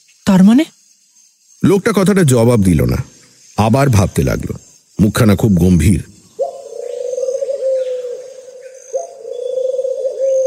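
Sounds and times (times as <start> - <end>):
speech: 0.3 - 0.8, 1.6 - 6.1
tame dove cooing: 6.4 - 10.4.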